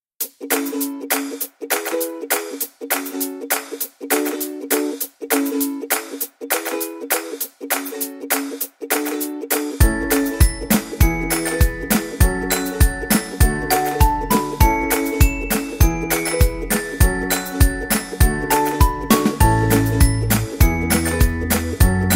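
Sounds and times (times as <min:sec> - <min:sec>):
happy upbeat ukulele background music: 0:00.2 - 0:22.1.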